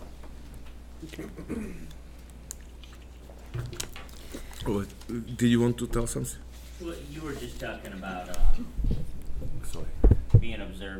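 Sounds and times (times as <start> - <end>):
low hum: 0.0 - 10.9
speech: 1.0 - 2.0, 4.6 - 10.9
person sipping a drink: 1.7 - 5.1.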